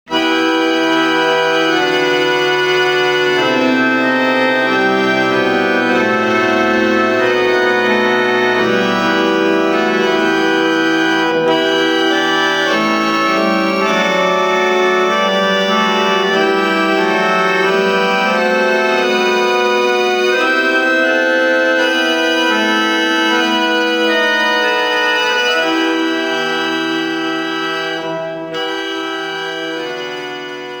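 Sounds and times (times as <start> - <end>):
harmonium: 0.1 - 30.7.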